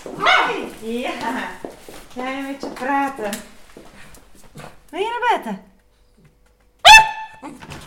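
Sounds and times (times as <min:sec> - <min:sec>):
female dog barking: 0:00.2 - 0:00.7, 0:06.8 - 0:07.6
speech: 0:02.2 - 0:03.5, 0:04.9 - 0:05.7.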